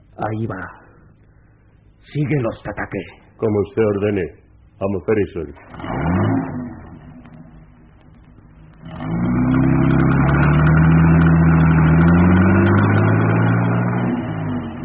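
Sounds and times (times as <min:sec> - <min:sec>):
speech: 0:00.2 - 0:00.8, 0:02.1 - 0:06.1
car engine idling then revving and accelerating: 0:05.6 - 0:14.8.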